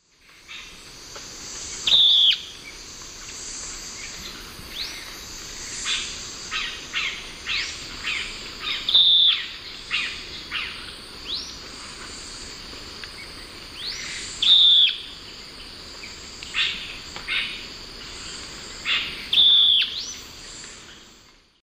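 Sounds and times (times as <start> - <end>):
Philydor erythropterum call in the Eastern Lowlands of South America: 1.8 - 2.5, 5.8 - 11.6, 13.8 - 15.1, 18.8 - 20.8.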